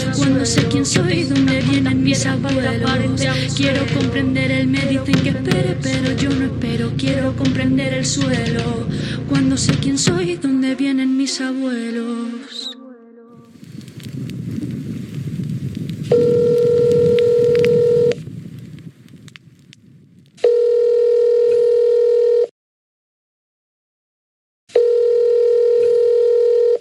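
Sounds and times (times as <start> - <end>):
low crackling noise: 0.0 - 12.0, 13.4 - 20.4
speech: 0.2 - 12.8
telephone call ringing tones: 16.1 - 18.2, 20.4 - 22.5, 24.8 - 26.7.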